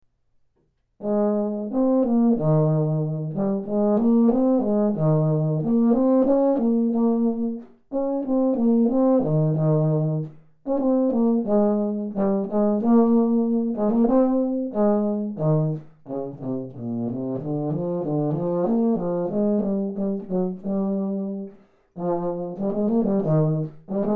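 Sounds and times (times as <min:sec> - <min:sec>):
baritone: 0:01.0 - 0:24.1.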